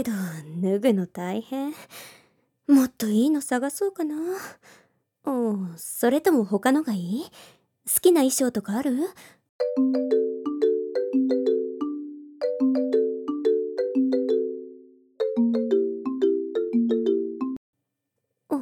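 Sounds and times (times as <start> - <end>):
speech: 0.0 - 10.2
phone ringing with a bright melodic ringtone: 9.6 - 17.6.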